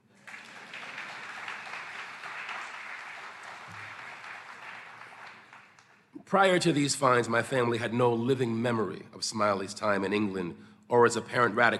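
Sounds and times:
audience applause: 0.0s - 6.0s
speech: 6.3s - 11.7s.

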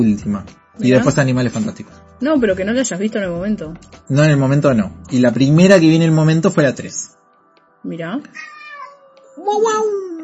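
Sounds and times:
speech: 0.0s - 7.2s, 7.8s - 8.6s, 9.4s - 10.0s
cat meowing angrily: 8.3s - 9.9s.

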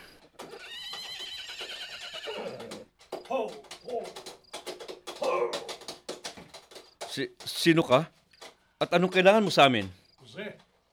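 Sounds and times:
horse whinnying with a long shaky neigh: 0.4s - 2.9s
speech: 3.3s - 4.3s, 7.2s - 8.2s, 8.8s - 10.0s.

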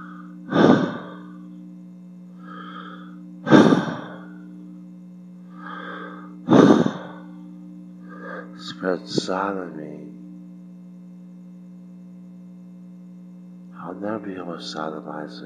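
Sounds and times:
exaggerated heavy breathing and gasping: 0.0s - 1.4s, 2.4s - 4.3s, 5.5s - 7.3s
steady low hum: 0.0s - 15.4s
speech: 8.8s - 10.0s, 14.0s - 15.4s.

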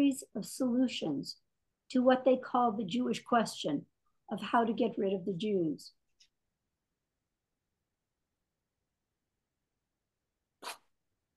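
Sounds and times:
speech: 0.0s - 6.0s
sharp breathy sneeze: 10.6s - 10.9s.

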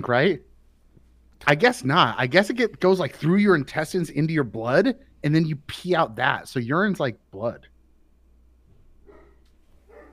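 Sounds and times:
speech: 0.0s - 0.5s, 1.4s - 7.7s
steady low hum: 0.0s - 10.1s
pet dog barking: 9.0s - 10.1s.

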